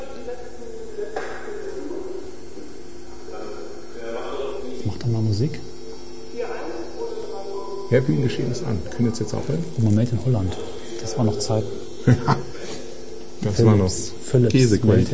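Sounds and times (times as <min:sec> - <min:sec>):
low electrical hum from an old loudspeaker: 0:00.0 - 0:15.1
speech: 0:05.0 - 0:05.7, 0:07.9 - 0:12.5, 0:13.5 - 0:15.1
laughter: 0:11.9 - 0:13.1.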